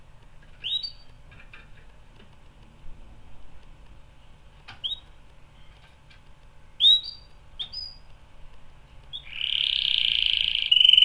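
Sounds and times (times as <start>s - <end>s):
canary chirping and whistling: 0.6s - 1.2s, 4.8s - 5.8s, 6.8s - 8.1s, 9.1s - 11.0s.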